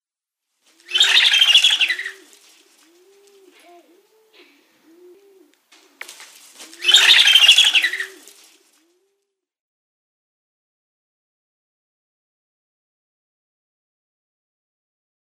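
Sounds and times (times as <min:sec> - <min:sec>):
black vulture: 0:00.6 - 0:09.2.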